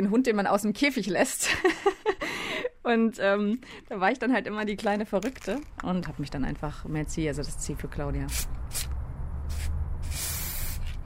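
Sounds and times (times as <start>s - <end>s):
speech: 0.1s - 1.9s, 2.8s - 8.9s
spray paint can hissing as a graffiti artist works: 8.3s - 11.0s.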